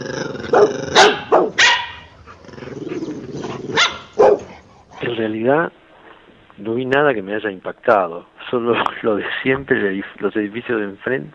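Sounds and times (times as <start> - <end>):
dog growling: 0.0 - 5.3
dog barking: 0.5 - 2.1, 3.7 - 4.6
speech: 5.2 - 5.8, 6.6 - 11.3.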